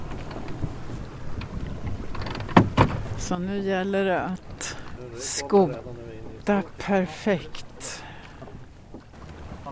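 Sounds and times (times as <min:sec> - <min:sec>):
low wind rumble: 0:00.0 - 0:09.7
water rushing past a moving sailboat's bow: 0:00.0 - 0:09.7
knock or splash: 0:02.5 - 0:03.1
speech: 0:03.3 - 0:07.7.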